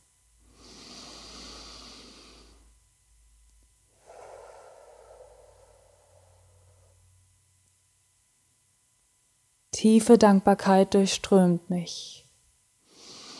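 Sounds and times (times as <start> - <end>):
deep deliberate human breathing: 0.5 - 2.8, 3.9 - 7.4, 12.9 - 13.3
speech: 9.8 - 12.2.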